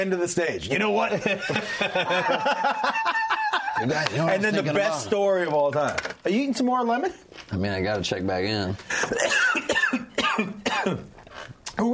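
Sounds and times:
speech: 0.0 - 3.1, 3.8 - 9.4, 10.8 - 11.1
laughter: 1.0 - 4.6
person coughing: 9.0 - 11.1.

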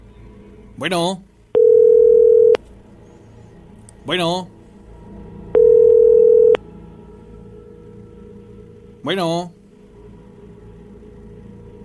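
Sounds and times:
faint hum: 0.0 - 11.8
speech: 0.8 - 1.3, 4.0 - 4.6, 9.0 - 9.6
telephone line tone during a call: 1.6 - 2.6, 5.6 - 6.6.

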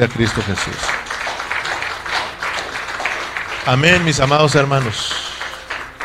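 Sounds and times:
speech: 0.0 - 1.0, 3.6 - 5.2
crowd applauding at an evening worship gathering: 0.0 - 6.0.

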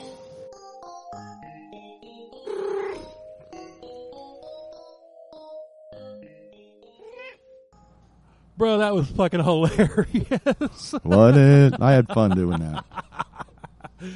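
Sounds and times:
cat meowing: 7.0 - 7.4
speech: 8.6 - 13.0
laughter: 9.6 - 14.1.

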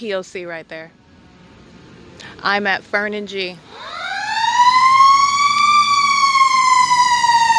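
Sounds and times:
speech: 0.0 - 1.0, 2.3 - 4.0
fire truck siren wailing as the truck drives past on a street: 3.6 - 7.5.

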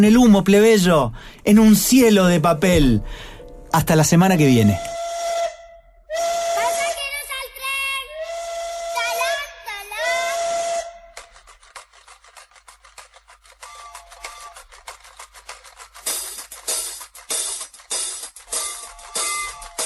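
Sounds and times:
speech: 0.0 - 5.0
steam train whistle: 4.8 - 7.0, 8.1 - 11.2, 18.6 - 19.8.

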